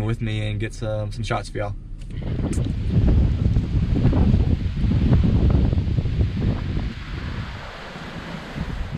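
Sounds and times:
speech: 0.1 - 3.5
strong wind gusts buffeting the microphone beneath a beach pier: 2.1 - 8.9
faint wash of surf at the beach: 2.7 - 8.9.

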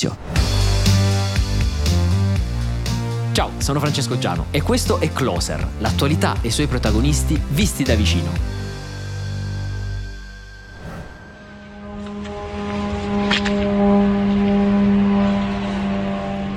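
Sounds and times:
speech: 0.0 - 0.3, 3.4 - 8.6
attack drones flying overhead: 0.4 - 16.5.

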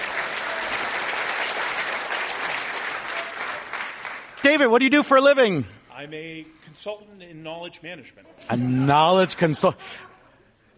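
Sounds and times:
live audience applauding at a magic show: 0.0 - 5.0
speech: 4.4 - 10.1.

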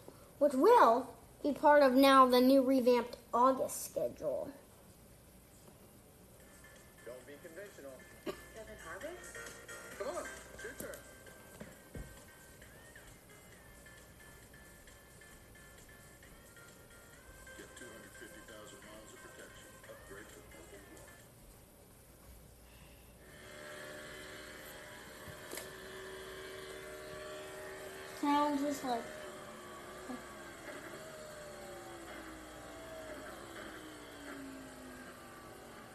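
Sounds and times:
speech: 0.4 - 4.6, 28.8 - 29.2
racing car engines during simulated lap of Daytona Road Course: 23.5 - 35.9.

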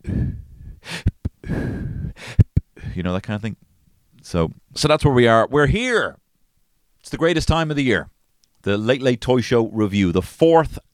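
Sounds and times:
person's voice imitating short fast bursts of breath: 0.0 - 3.0
speech: 3.0 - 6.2, 7.0 - 10.9.

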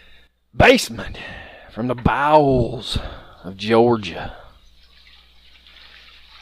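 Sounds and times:
faint low electrical hum: 0.0 - 6.4
speech: 0.5 - 4.4
toilet flushing in a basement in Georgia: 4.3 - 6.4
rainwater pouring from gutters during heavy rain in Georgia: 4.6 - 6.4.

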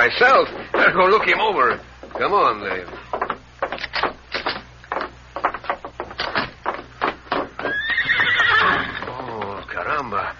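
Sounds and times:
speech: 0.0 - 3.1
horse hooves clip-clopping: 0.0 - 10.2
horse whinnying: 7.6 - 9.7.

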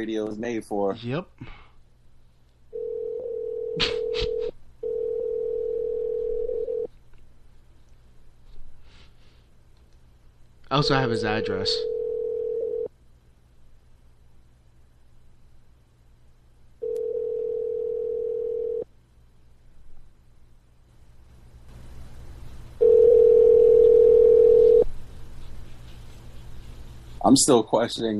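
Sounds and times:
speech: 0.0 - 1.6, 3.8 - 4.6, 10.7 - 12.0, 27.3 - 28.1
hiss: 0.0 - 28.1
telephone ringback tone from a phone call on live radio: 2.8 - 3.8, 4.8 - 6.9, 11.8 - 12.9, 16.8 - 18.8, 22.8 - 24.8
laughter: 3.8 - 4.5.

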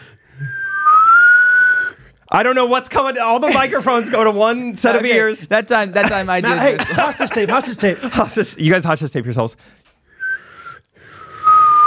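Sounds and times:
whistling while breathing in: 0.0 - 2.1, 10.1 - 11.8
speech: 2.3 - 9.9
laughter: 3.4 - 8.6.

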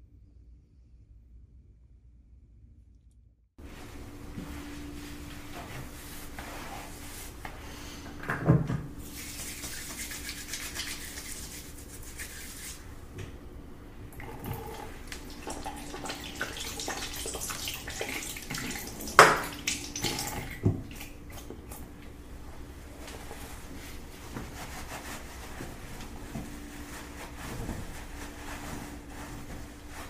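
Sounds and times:
steady low hum in a hotel room: 0.0 - 30.0
running water in a hotel room: 9.0 - 12.9, 14.1 - 22.0.

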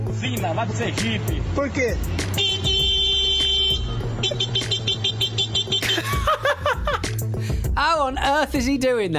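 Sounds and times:
speech: 0.1 - 2.7, 7.9 - 9.1
man vocally imitating a car horn: 2.4 - 6.0
man chuckling: 5.8 - 7.0.

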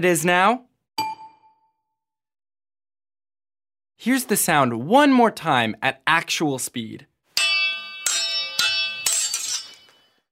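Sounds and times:
speech: 0.0 - 0.7, 4.0 - 7.1
swords clashing in a sword fight: 7.4 - 10.2.

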